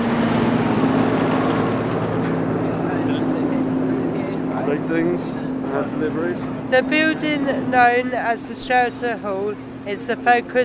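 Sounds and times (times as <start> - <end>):
lorry engine rumbling at a building site with crane equipment: 0.0 - 10.6
speech: 4.8 - 10.6.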